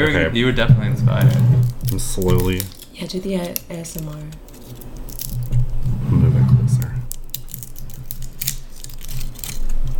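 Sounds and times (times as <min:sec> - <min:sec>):
speech: 0:00.0 - 0:04.8
crinkling foil on a corked bottle: 0:01.2 - 0:05.8, 0:07.0 - 0:09.9.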